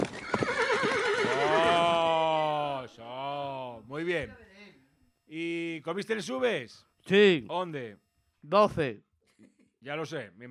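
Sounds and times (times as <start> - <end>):
horse hoof clatters: 0.0 - 1.4
restless horses whinnying: 0.0 - 2.8
speech: 4.1 - 4.4, 5.3 - 10.4.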